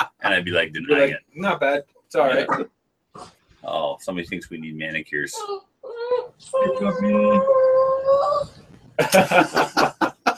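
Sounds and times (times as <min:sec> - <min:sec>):
speech: 0:00.0 - 0:05.7, 0:06.4 - 0:10.2
person imitating a howling dog: 0:06.0 - 0:08.6
laughter: 0:09.0 - 0:10.3.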